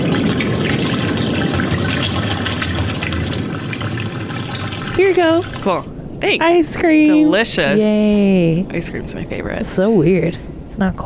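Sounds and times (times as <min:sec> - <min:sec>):
water running from a faucet: 0:00.0 - 0:05.9
speech: 0:05.0 - 0:11.0.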